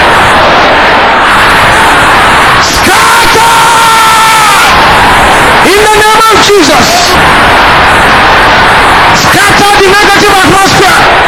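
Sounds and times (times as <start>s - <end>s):
higher yell: 0.0s - 11.2s
large crowd shouting a prayer in unison: 0.0s - 11.2s.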